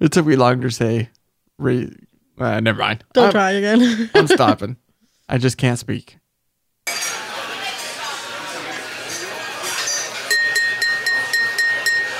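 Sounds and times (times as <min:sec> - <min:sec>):
speech: 0:00.0 - 0:06.2
laughter: 0:03.2 - 0:04.7
murmur of crowd chatter: 0:06.9 - 0:12.1
glasses clinking in a toast: 0:09.6 - 0:12.1.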